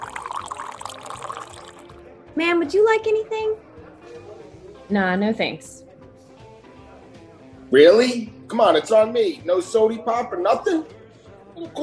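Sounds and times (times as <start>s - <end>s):
coffee pouring into a cup at a cafe table: 0.0s - 2.0s
speech: 2.4s - 3.6s, 4.9s - 5.8s, 7.7s - 11.0s, 11.6s - 11.8s.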